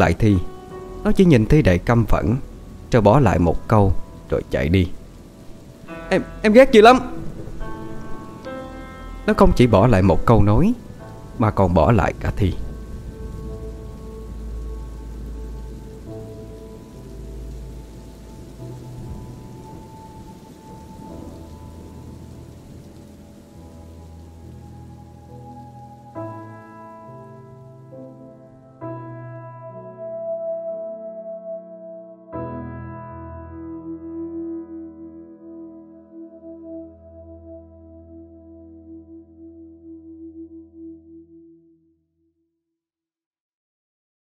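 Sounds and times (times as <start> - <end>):
speech: 0.0 - 5.0, 6.1 - 7.2, 9.3 - 10.8, 11.4 - 12.6
deep rumbles of thunder: 0.0 - 28.7
rain falling: 0.0 - 28.8
soft musical notes: 0.0 - 41.8.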